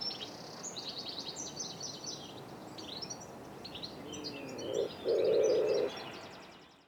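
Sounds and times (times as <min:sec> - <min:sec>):
high chirping songbirds: 0:02.1 - 0:06.4
wood pigeon giving low mellow hoots: 0:04.5 - 0:05.9.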